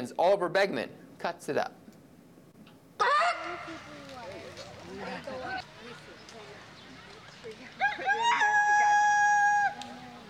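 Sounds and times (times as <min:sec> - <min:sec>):
speech: 0:00.0 - 0:01.8, 0:03.0 - 0:06.0
busy crowd murmuring: 0:03.0 - 0:10.2
rooster crowing: 0:07.8 - 0:09.9.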